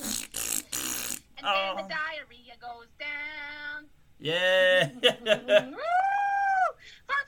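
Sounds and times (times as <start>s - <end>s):
voice making exaggerated imitated fart noises: 0.0s - 1.6s
playful vocal squeaks: 0.0s - 1.9s
speech: 1.4s - 3.0s, 4.2s - 5.9s.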